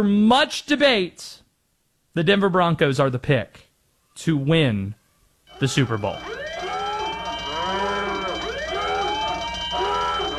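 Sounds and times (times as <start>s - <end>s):
speech: 0.0s - 1.4s, 2.2s - 3.6s, 4.2s - 5.0s, 5.6s - 6.5s
several layered alarm sirens wailing with rising and falling tone: 5.5s - 10.3s.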